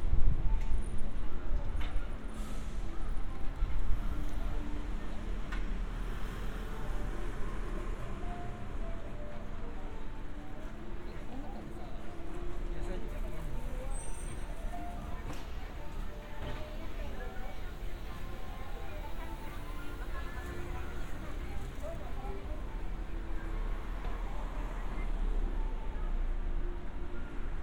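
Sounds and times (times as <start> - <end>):
city hum in a Japanese town: 0.0 - 27.6
low rumble of traffic in a Japanese town: 0.0 - 27.6
scattered voices: 8.1 - 26.8.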